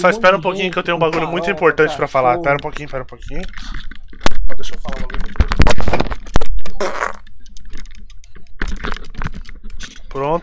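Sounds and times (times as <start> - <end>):
speech: 0.0 - 6.2, 10.1 - 10.4
fart: 6.6 - 7.3.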